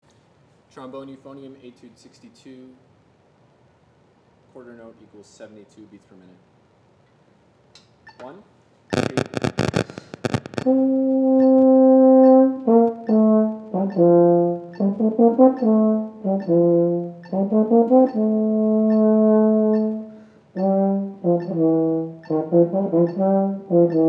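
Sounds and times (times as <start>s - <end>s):
euphonium etude: 8.9s - 24.0s
trombone etude: 10.6s - 24.0s.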